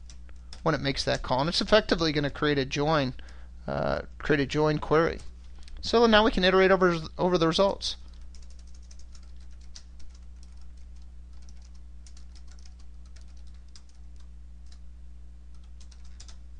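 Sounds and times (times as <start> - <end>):
low electrical hum: 0.0 - 16.5
speech: 0.6 - 8.0
typing on a computer keyboard: 8.1 - 14.8, 15.5 - 16.5.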